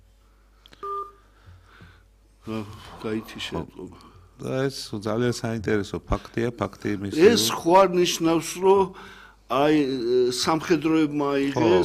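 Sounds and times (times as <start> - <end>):
telephone keypad tone as the line opens: 0.8 - 1.2
speech: 2.4 - 11.8.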